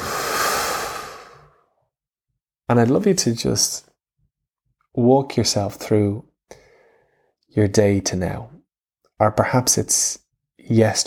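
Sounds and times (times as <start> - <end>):
slow breath in and out: 0.0 - 1.8, 6.5 - 7.4
speech: 2.7 - 3.9, 5.0 - 6.6, 7.5 - 8.6, 9.2 - 11.0.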